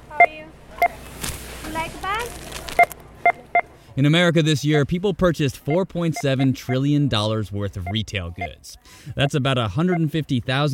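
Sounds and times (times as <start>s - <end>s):
checkout scanner beeping at a Walmart store in America: 0.1s - 1.0s, 2.8s - 3.7s, 5.6s - 6.9s, 7.7s - 8.6s, 9.8s - 10.2s
speech: 4.0s - 10.7s.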